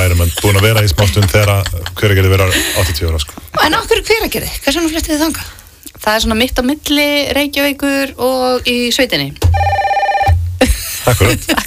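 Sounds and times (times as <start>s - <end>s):
laughter: 0.0s - 3.2s, 10.6s - 11.6s
speech: 0.6s - 9.8s, 10.6s - 11.6s
telephone ringing as a listener calls in: 9.5s - 10.4s.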